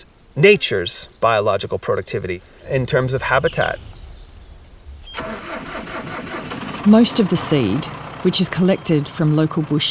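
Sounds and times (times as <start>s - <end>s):
speech: 0.0s - 3.9s, 6.8s - 9.9s
tractor engine starting: 0.0s - 9.9s.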